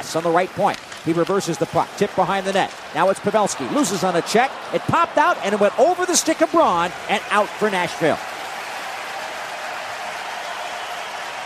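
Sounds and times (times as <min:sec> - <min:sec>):
large hockey arena crowd cheering: 0:00.0 - 0:11.4
speech: 0:00.1 - 0:08.3
large arena crowd applause: 0:01.8 - 0:11.4.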